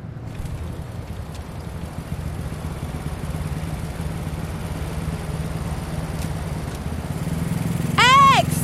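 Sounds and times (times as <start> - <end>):
motorcycle engine droning while riding: 0.2 - 8.6.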